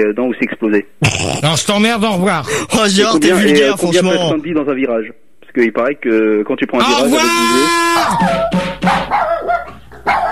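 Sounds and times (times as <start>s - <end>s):
speech: 0.0s - 10.3s
dog barking sharp yappy barks: 8.2s - 10.3s.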